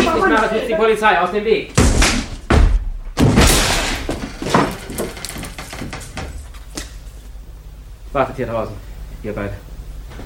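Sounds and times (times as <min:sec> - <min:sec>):
speech: 0:00.3 - 0:01.8, 0:08.1 - 0:09.7
heavy thuds against a door being forced open: 0:01.8 - 0:06.5
door rattling: 0:03.2 - 0:06.7.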